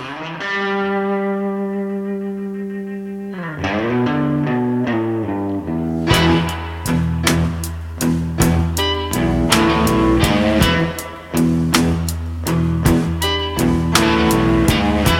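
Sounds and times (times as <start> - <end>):
Chicago blues band playing: 0.0 - 15.1
distorted electric guitar sustained chord: 0.0 - 15.1
steady hard-hitting drum beat: 6.1 - 15.1.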